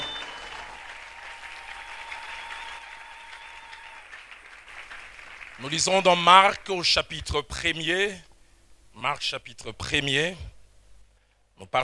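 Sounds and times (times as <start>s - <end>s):
church congregation applauding: 0.0s - 6.9s
speech: 5.6s - 8.3s, 9.0s - 10.5s, 11.6s - 11.8s.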